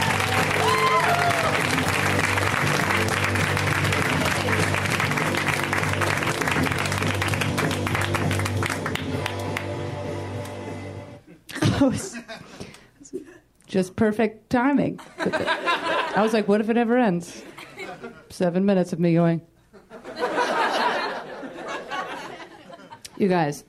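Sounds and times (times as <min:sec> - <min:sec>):
audience applause and cheering for a comedian at a live stand-up comedy show: 0:00.0 - 0:10.0
speech: 0:13.8 - 0:17.5, 0:18.3 - 0:19.5, 0:23.2 - 0:23.6
laughter: 0:15.0 - 0:16.4, 0:19.8 - 0:23.2.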